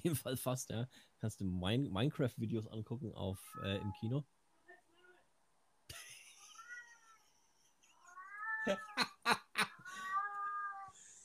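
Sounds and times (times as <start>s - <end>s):
speech: 0.0s - 4.4s, 8.6s - 9.4s
cat meowing: 6.4s - 7.2s, 8.0s - 9.0s, 9.8s - 11.0s
laughter: 8.7s - 9.8s.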